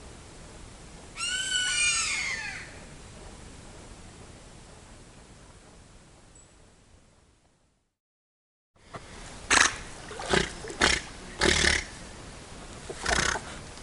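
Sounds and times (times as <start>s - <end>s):
hiss: 0.0s - 7.9s, 8.8s - 13.8s
giant otter squealing cries: 1.2s - 2.8s
giant otter harsh grunts: 10.1s - 11.9s.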